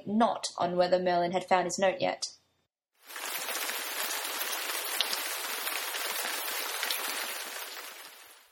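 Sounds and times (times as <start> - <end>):
speech: 0.1 - 2.4
heavy rain falling: 3.0 - 8.5.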